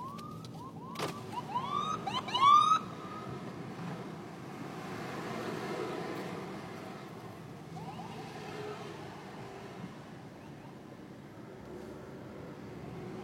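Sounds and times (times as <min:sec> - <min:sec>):
ambulance siren wailing in quick rising sweeps: 0:00.0 - 0:03.4, 0:07.7 - 0:09.0
low traffic rumble: 0:00.0 - 0:13.2
steady street noise: 0:00.0 - 0:13.2.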